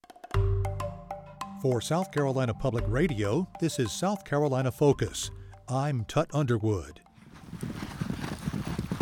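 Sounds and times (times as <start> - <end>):
speech: 1.6 - 7.0
hooves of several horses galloping in a polo game in South Carolina: 6.4 - 8.9.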